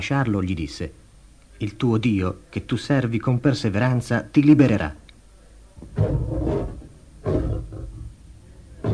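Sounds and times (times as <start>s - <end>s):
speech: 0.0s - 1.0s, 1.6s - 5.0s
lion roaring: 5.9s - 8.9s.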